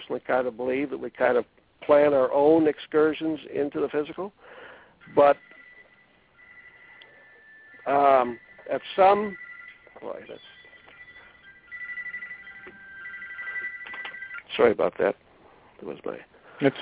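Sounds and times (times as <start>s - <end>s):
speech: 0.1s - 5.5s, 7.9s - 9.4s, 10.0s - 10.5s, 14.6s - 15.2s, 15.8s - 16.8s
cell phone ringing with a steady high electronic tone: 5.0s - 14.5s.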